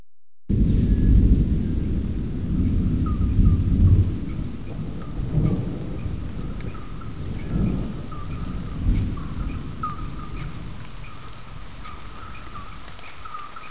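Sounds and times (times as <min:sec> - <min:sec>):
rainforest ambience: 0:00.6 - 0:13.6.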